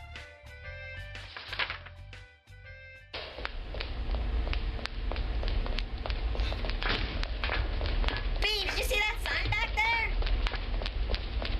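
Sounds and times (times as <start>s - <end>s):
dense hum: 3.1s - 11.5s
footsteps walking through hallway: 3.2s - 11.5s.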